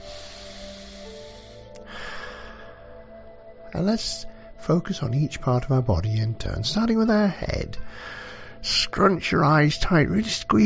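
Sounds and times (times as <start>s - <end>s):
slow deep breath in through the nose and out through the mouth: 0.0s - 3.4s, 7.8s - 8.6s
speech: 3.7s - 10.6s.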